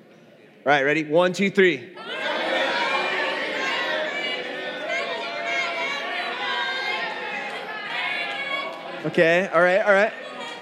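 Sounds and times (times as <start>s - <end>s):
speech: 0.6s - 2.0s, 9.0s - 10.2s
audience shouting overlapping answers: 2.0s - 9.1s.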